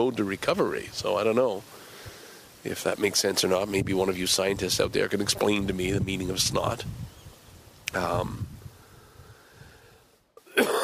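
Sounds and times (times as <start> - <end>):
speech: 0.0 - 1.8, 2.6 - 7.2, 7.9 - 8.5
quiet breathing: 1.6 - 2.7, 8.5 - 10.4
short throaty cough: 10.4 - 10.8.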